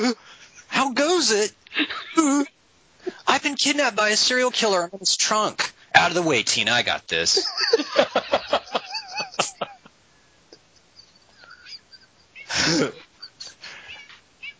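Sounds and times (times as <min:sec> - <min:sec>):
speech: 0:00.0 - 0:08.5
laughter: 0:07.3 - 0:09.9
cat crying: 0:11.4 - 0:13.1.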